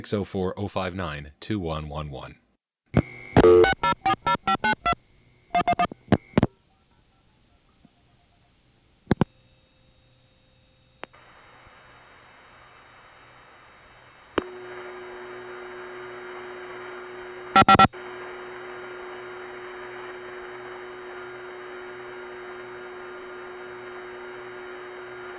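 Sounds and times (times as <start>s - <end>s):
speech: 0.0s - 4.0s, 17.6s - 17.9s
hissy hum of telephone conference line on the Vancouver step tandem: 3.0s - 7.3s, 11.1s - 25.3s
touch-tone dialing beeps into a telephone conference line: 5.6s - 5.9s, 17.6s - 17.9s.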